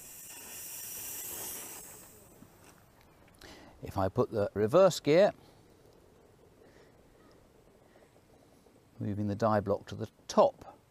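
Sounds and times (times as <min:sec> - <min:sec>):
steam locomotive hissing steam while moving forwards: 0:00.0 - 0:02.4
speech: 0:03.8 - 0:05.5, 0:09.0 - 0:10.7.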